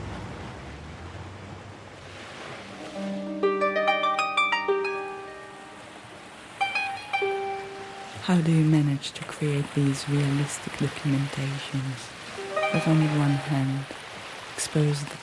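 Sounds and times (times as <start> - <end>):
sea waves by the shore at Jaffa: 0.0 - 15.2
melodic tune of plucked-sounding notes: 2.7 - 8.3, 12.4 - 14.0
speech: 8.3 - 14.0, 14.6 - 15.2.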